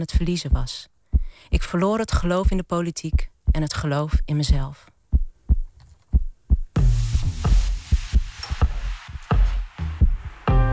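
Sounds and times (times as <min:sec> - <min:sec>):
speech: 0:00.0 - 0:04.9
woman's heartbeat thumps: 0:00.0 - 0:10.7
broad hissing noise: 0:06.8 - 0:10.5.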